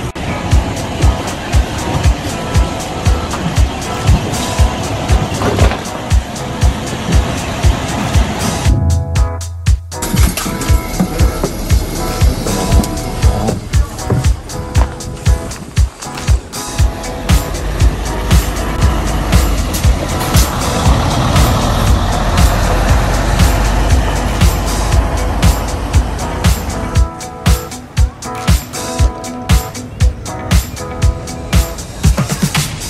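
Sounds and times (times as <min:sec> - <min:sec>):
bus engine and tyres rumbling on a snowy road in Memanbetsu: 0:00.0 - 0:09.4, 0:10.0 - 0:32.8
rattles and thumps of a bus on a snowy road: 0:00.6 - 0:09.4, 0:10.0 - 0:26.8.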